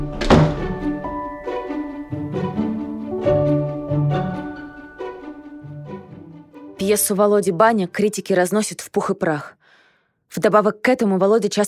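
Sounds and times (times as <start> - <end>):
door shutting: 0.0 - 1.0
soft sustained musical tones: 0.0 - 7.1
speech: 6.9 - 9.6, 10.3 - 11.6.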